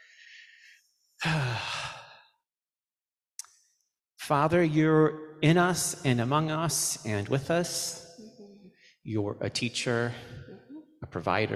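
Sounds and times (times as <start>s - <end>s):
person breathing slowly close to the microphone: 0.0s - 2.4s
speech: 4.3s - 8.0s, 9.0s - 10.4s, 11.1s - 11.5s.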